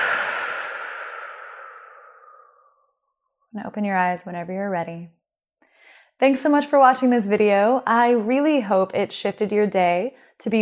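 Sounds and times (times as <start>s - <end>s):
deep exhale during a guided breathing exercise: 0.0s - 2.9s
speech: 3.6s - 5.2s, 6.2s - 10.6s.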